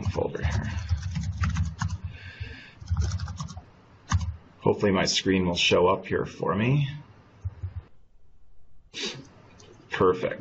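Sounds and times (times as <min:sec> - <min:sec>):
rapid typing on a computer keyboard: 0:00.0 - 0:02.1, 0:02.8 - 0:04.4
speech: 0:04.6 - 0:07.0, 0:10.0 - 0:10.3.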